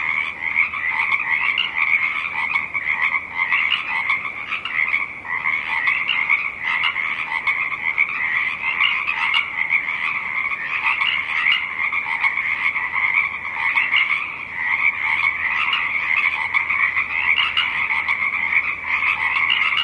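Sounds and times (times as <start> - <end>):
Pacific chorus frogs croaking in a dense chorus: 0.0 - 19.8.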